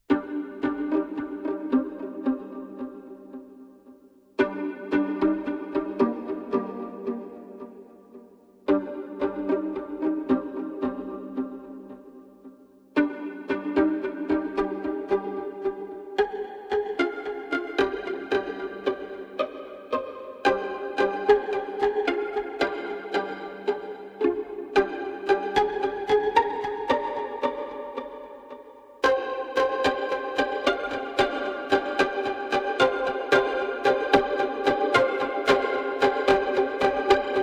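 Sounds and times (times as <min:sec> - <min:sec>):
violin pizzicato: 0:00.0 - 0:37.4.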